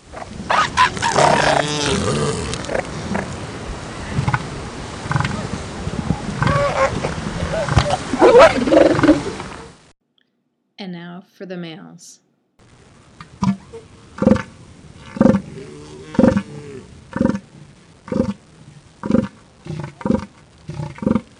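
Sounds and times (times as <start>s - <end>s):
group of female elephant seals moaning and barking: 0.1s - 3.4s, 4.0s - 9.6s, 13.5s - 18.4s
speech: 11.3s - 12.3s.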